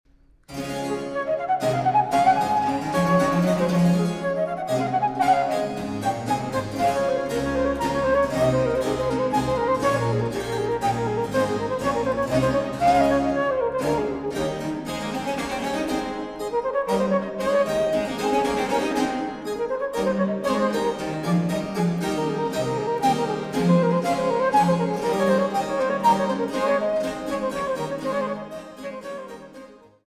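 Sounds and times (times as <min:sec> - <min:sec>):
basso continuo: 0:00.5 - 0:29.8
transverse flute playing in D major: 0:00.8 - 0:30.0.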